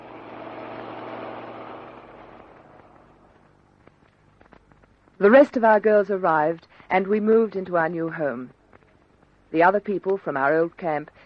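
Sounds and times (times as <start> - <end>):
truck engine rumbling: 0.0 - 4.4
road noise: 0.0 - 4.6
speech: 5.2 - 8.6, 9.5 - 11.2.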